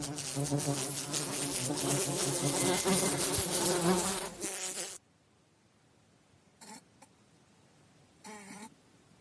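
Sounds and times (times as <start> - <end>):
flies buzzing: 0.0 - 5.0.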